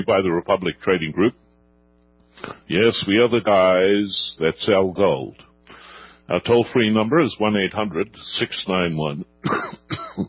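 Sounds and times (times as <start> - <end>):
speech: 0.0 - 1.4, 2.4 - 5.5, 6.3 - 10.2
person clearing throat: 9.4 - 10.2
person coughing: 9.4 - 10.2.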